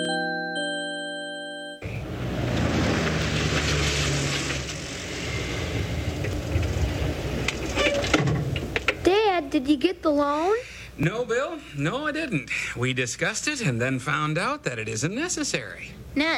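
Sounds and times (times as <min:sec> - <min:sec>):
chime-like tone: 0:00.0 - 0:01.9
car engine rumbling as the vehicle pulls up in a driveway at a house: 0:01.8 - 0:09.1
speech: 0:09.6 - 0:16.3.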